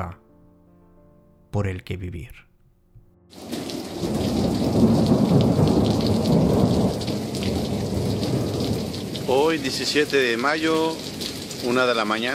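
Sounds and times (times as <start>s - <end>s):
speech: 0.0s - 0.2s, 1.5s - 2.5s, 9.3s - 12.3s
heavy rain pouring during a very strong cold thunderstorm: 3.3s - 12.3s
low rumbling thunder: 3.4s - 11.7s.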